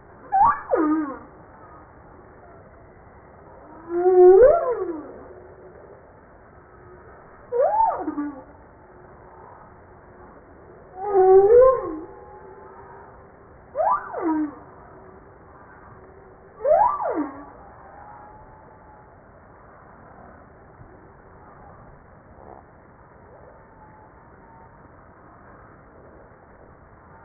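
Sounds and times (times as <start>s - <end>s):
Humpback whale song: 0.2s - 2.6s, 3.5s - 6.0s, 6.8s - 19.4s.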